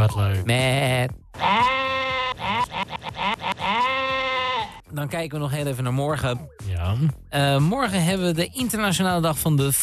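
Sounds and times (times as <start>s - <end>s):
speech: 0.1s - 1.8s, 4.9s - 9.8s
sheep bleating: 1.4s - 4.8s.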